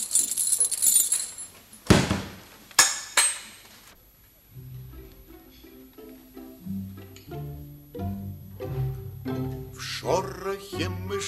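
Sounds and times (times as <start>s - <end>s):
library keys jangling as they are handed over: 0.0s - 1.8s
sharp metallic clinks of keys: 0.0s - 1.9s
soft tonal music: 4.5s - 11.2s
speech: 10.0s - 11.2s.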